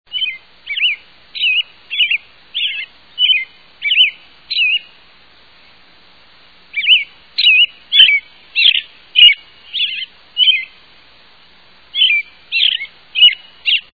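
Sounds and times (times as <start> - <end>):
American Robin: 0.1 - 5.0, 6.7 - 10.8, 11.9 - 13.9.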